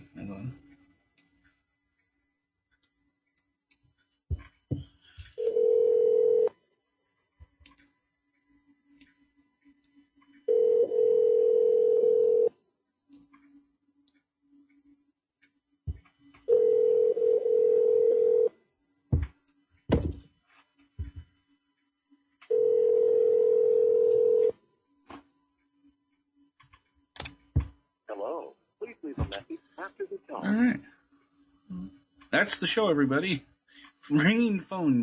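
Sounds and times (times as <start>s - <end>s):
telephone line ringing tone on an unanswered call: 5.4s - 6.6s, 10.5s - 12.6s, 16.5s - 18.5s, 22.5s - 24.6s
handling thumps: 19.1s - 20.3s, 27.3s - 27.8s
speech: 32.4s - 33.5s, 34.1s - 35.0s.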